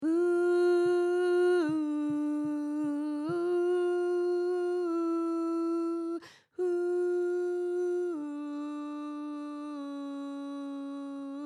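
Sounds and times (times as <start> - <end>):
alto voice singing ooh: 0.0 - 11.4.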